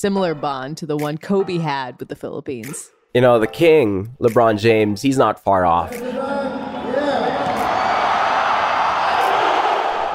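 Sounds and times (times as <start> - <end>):
speech: 0.0 - 6.6
packed arena crowd roaring after a basketball dunk in Manila's Mall of Asia Arena: 6.0 - 10.1.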